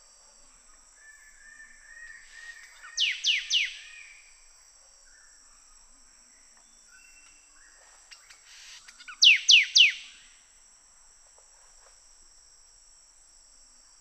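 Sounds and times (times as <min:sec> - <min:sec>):
sooty thicket fantail call in Papua New Guinea: 0:02.3 - 0:04.0, 0:08.6 - 0:10.2.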